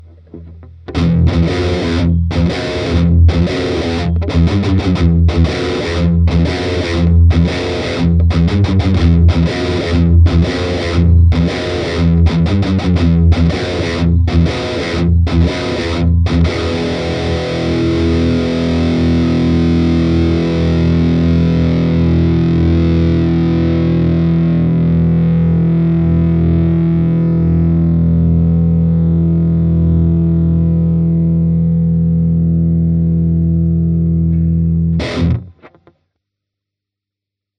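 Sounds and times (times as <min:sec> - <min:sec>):
electric guitar with active pickups through amplifier with full overdrive gain: 0:00.0 - 0:36.0.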